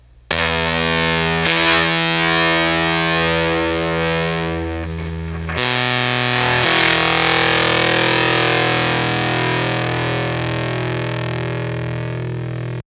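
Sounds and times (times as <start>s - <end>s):
fuzz guitar broadcast: 0.3s - 12.8s.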